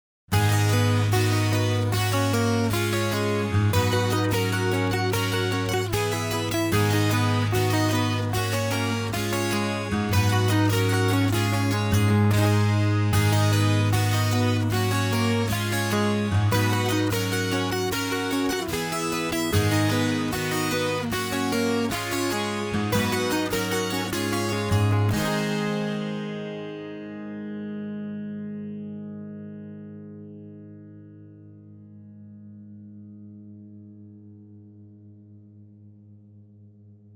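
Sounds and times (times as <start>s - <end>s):
acoustic guitars: 0.3s - 26.6s.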